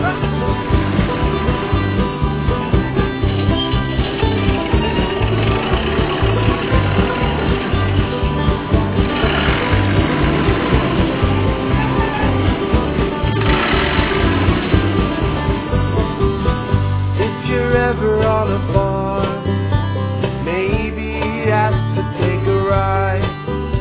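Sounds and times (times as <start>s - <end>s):
tractor engine chugging: 0.0s - 23.1s.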